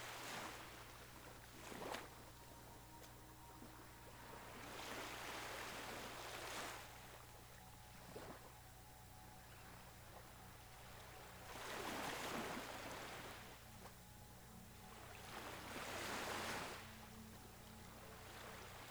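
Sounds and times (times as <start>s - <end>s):
gentle waves washing against a shore where a boat is being beached: 0.0s - 18.9s
steady low hum: 0.7s - 18.9s.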